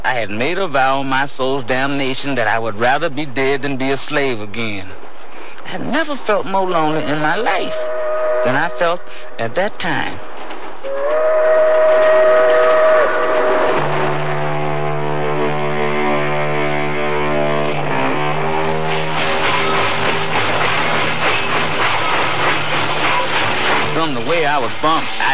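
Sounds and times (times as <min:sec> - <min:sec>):
speech: 0:00.0 - 0:05.0, 0:05.7 - 0:10.3, 0:24.0 - 0:25.3
freight train rumbling along the rails: 0:06.3 - 0:16.6, 0:17.4 - 0:25.3
train horn or whistle: 0:06.9 - 0:09.4, 0:10.8 - 0:23.9.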